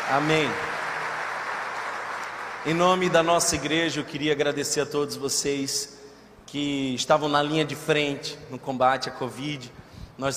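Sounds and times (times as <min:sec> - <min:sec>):
crowd applauding: 0:00.0 - 0:03.7
speech: 0:00.1 - 0:00.7, 0:02.6 - 0:10.3.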